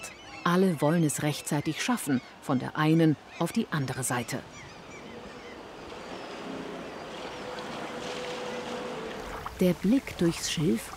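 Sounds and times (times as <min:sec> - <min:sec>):
speech: 0:00.5 - 0:04.6, 0:09.6 - 0:10.9
water splashing and lapping from a boat moving along a reed-lined river: 0:04.5 - 0:10.9.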